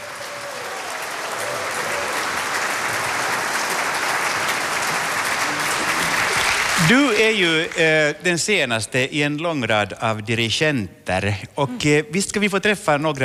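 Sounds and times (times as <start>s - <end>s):
audience applause at a male choir anniversary celebration: 0.0s - 8.0s
speech: 6.8s - 13.2s.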